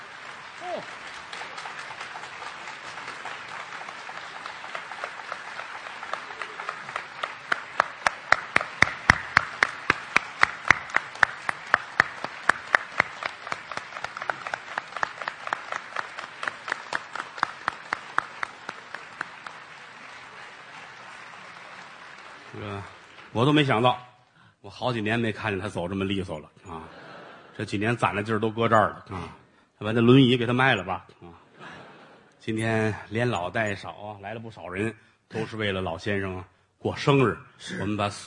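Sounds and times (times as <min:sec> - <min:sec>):
large audience applauding at a crosstalk comedy event: 0:00.0 - 0:24.0
speech: 0:00.6 - 0:01.1, 0:22.8 - 0:24.1, 0:24.7 - 0:26.6, 0:27.6 - 0:31.2, 0:32.4 - 0:38.2
laughter: 0:26.6 - 0:28.0, 0:31.3 - 0:32.4.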